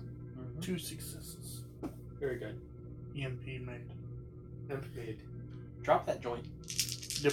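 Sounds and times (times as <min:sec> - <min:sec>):
speech: 0:00.7 - 0:01.4, 0:02.2 - 0:04.0, 0:04.7 - 0:07.3
dice rattling and clattering onto a hard surface: 0:06.6 - 0:07.3.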